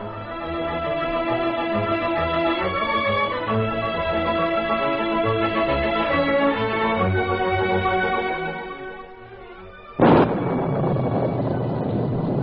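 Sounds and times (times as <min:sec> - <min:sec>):
sustained music: 0:00.0 - 0:12.4
loud crash of thunder during a heavy rainstorm: 0:10.0 - 0:12.4
steady roar of heavy rain: 0:10.0 - 0:12.4.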